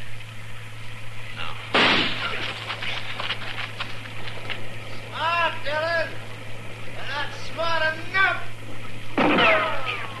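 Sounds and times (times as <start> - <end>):
low hum: 0.0 - 10.1
gunshot fired at a tree: 1.7 - 2.5, 9.2 - 9.8.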